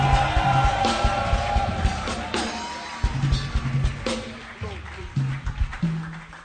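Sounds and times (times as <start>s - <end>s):
large audience shouting and cheering: 0.0s - 5.4s.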